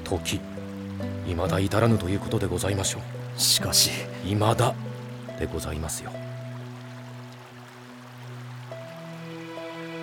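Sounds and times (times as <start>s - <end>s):
small stream babbling: 0.0s - 10.0s
speech: 0.1s - 6.2s.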